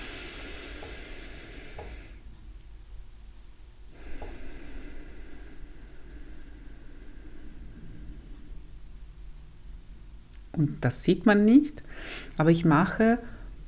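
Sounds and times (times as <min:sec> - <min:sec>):
slow deep breathing in and out during a paced breathing exercise: 0:00.0 - 0:02.6, 0:03.8 - 0:10.3, 0:11.8 - 0:12.4, 0:13.2 - 0:13.6
speech: 0:10.6 - 0:13.4.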